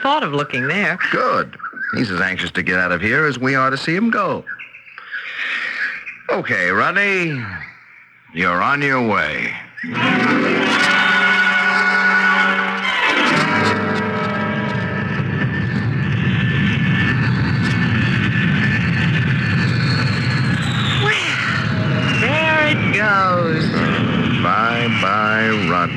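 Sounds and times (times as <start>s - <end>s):
speech: 0.0s - 4.6s, 6.3s - 7.7s, 8.3s - 10.5s
propeller airplane roaring overhead: 9.8s - 25.9s.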